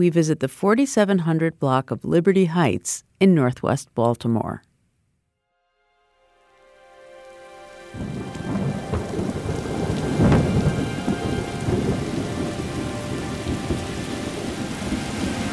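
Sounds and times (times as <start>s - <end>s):
speech: 0.0s - 4.7s
heavy rain pounding surfaces: 7.2s - 15.5s.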